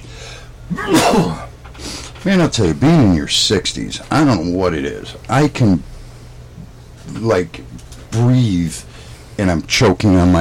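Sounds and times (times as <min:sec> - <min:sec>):
forceful sneeze: 0:00.7 - 0:01.5
speech: 0:00.7 - 0:01.5, 0:02.2 - 0:05.9, 0:07.1 - 0:10.3.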